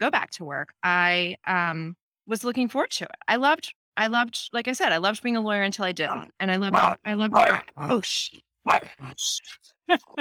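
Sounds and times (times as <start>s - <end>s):
speech: 0.0s - 10.1s
small female dog barking at a passing car: 6.1s - 8.0s, 8.7s - 9.1s.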